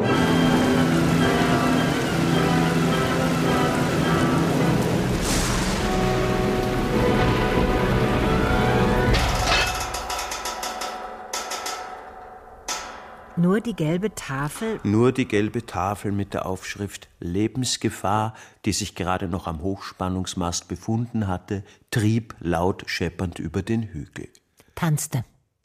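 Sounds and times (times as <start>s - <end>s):
heavy rain pouring onto fields: 0.0s - 10.6s
speech: 13.7s - 25.3s.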